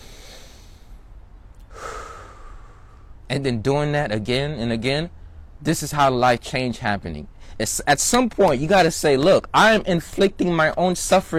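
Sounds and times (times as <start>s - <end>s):
person taking a deep breath in and out while sitting down: 0.0s - 3.2s, 7.3s - 7.6s
speech: 3.3s - 11.3s.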